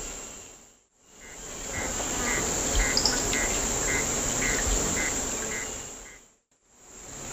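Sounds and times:
male Knipolegus poecilocercus display song in Eastern Lowlands of South America: 0:01.3 - 0:06.2.

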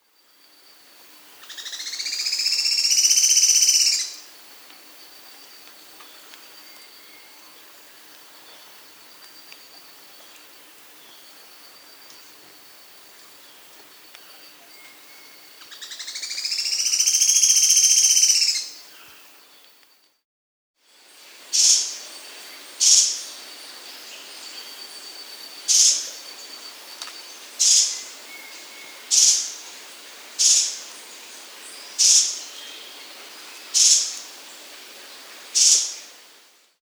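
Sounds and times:
Sharp-tailed streamcreeper Lochmias calling in South America: 0:01.4 - 0:04.3, 0:14.2 - 0:19.3, 0:21.5 - 0:34.5.

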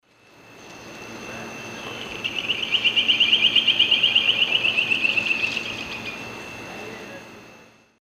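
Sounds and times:
Berlepschia rikeri song in Eastern Lowlands of South America: 0:01.1 - 0:06.3.

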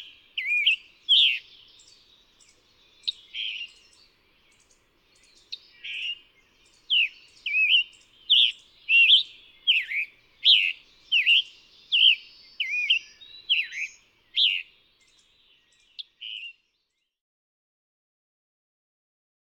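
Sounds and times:
scarlet tanager song of hoarse burry phrases in North America: 0:00.0 - 0:17.0.

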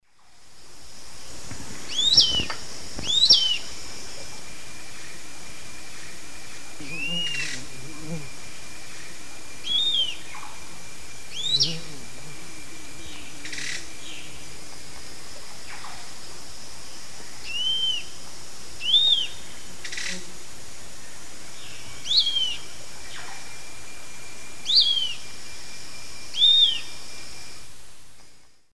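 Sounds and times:
Tolmomyias assimilis song in South American eastern lowlands: 0:01.9 - 0:03.7, 0:06.8 - 0:10.7, 0:11.3 - 0:12.0, 0:17.4 - 0:18.1, 0:18.8 - 0:20.2, 0:21.6 - 0:23.4, 0:24.6 - 0:25.2, 0:26.3 - 0:27.1.

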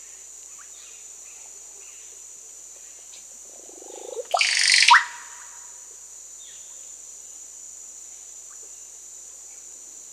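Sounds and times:
constant high-pitched hiss: 0:00.0 - 0:10.1
Russet-backed oropendola gurgling song in South America: 0:03.7 - 0:05.1.

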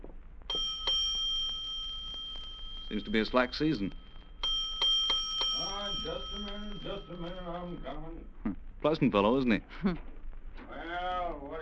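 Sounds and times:
low rumble: 0:00.0 - 0:11.5
hotel doorbell chiming: 0:00.5 - 0:08.2
speech: 0:02.9 - 0:04.0, 0:06.0 - 0:10.1.

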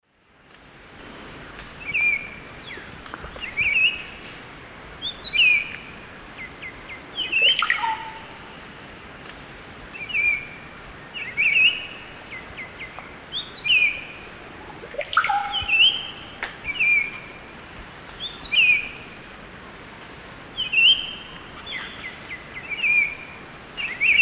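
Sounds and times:
Saltator maximus song in the Eastern Lowlands of South America: 0:01.8 - 0:04.2, 0:05.0 - 0:08.7, 0:09.9 - 0:17.4, 0:18.2 - 0:19.0, 0:20.5 - 0:24.1.

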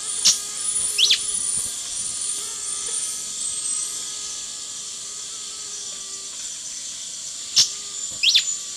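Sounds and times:
Schistocichla schistacea calls in South American Eastern Lowlands: 0:00.1 - 0:02.4, 0:07.6 - 0:08.6.

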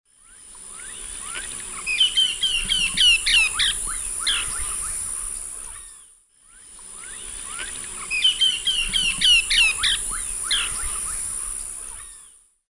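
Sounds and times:
Myiarchus ferox alarm call in South American eastern lowlands: 0:00.8 - 0:05.5, 0:07.1 - 0:11.8.

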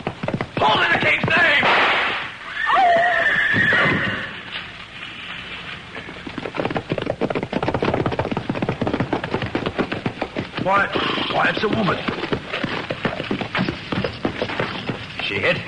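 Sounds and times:
horses' hooves galloping on hard ground: 0:00.0 - 0:15.6
speech: 0:00.6 - 0:01.4, 0:10.7 - 0:12.3, 0:15.3 - 0:15.6
horse whinnying: 0:02.4 - 0:04.5.

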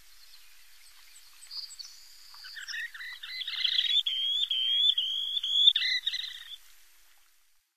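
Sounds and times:
Least sandpiper high wavering trilled calls: 0:01.6 - 0:06.6.

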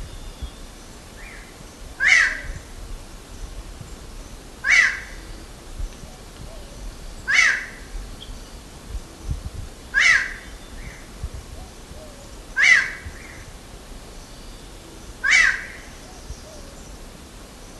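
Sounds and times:
hooded tinamou calling in South America: 0:02.0 - 0:02.5, 0:04.6 - 0:05.3, 0:06.5 - 0:08.3, 0:09.9 - 0:10.6, 0:12.2 - 0:13.3, 0:15.2 - 0:15.8.

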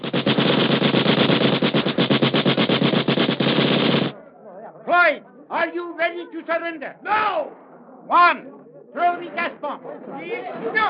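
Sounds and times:
machine gun firing bursts at a warehouse: 0:00.0 - 0:04.2
speech: 0:06.2 - 0:10.8.

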